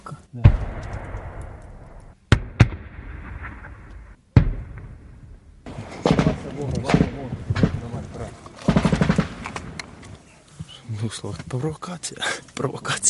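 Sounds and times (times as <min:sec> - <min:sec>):
single sharp gunshots: 0:00.4 - 0:08.0, 0:08.6 - 0:09.8
speech: 0:11.1 - 0:13.0.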